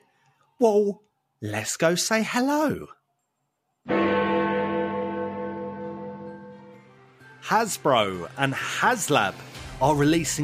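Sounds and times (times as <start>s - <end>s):
speech: 0.6s - 3.0s, 7.5s - 10.4s
large clock tower bell strike: 3.9s - 6.9s.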